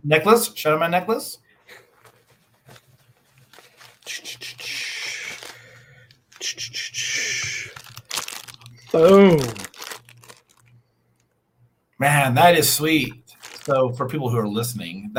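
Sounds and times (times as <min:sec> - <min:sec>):
speech: 0:00.0 - 0:01.8, 0:04.1 - 0:04.6, 0:06.4 - 0:07.3, 0:08.9 - 0:09.6, 0:12.0 - 0:15.1
rustling and crackling: 0:01.9 - 0:04.2, 0:05.2 - 0:06.4, 0:07.6 - 0:11.3, 0:13.2 - 0:13.8
small envelope package of paper and plastic tearing open: 0:03.4 - 0:04.3, 0:05.0 - 0:06.4, 0:07.6 - 0:10.7, 0:13.3 - 0:13.7.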